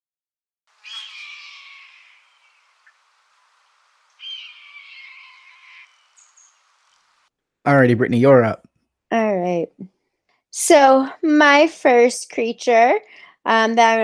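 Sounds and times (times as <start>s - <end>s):
red-tailed hawk screaming: 0.8s - 2.6s, 4.2s - 6.1s
speech: 7.7s - 10.0s, 10.6s - 14.0s.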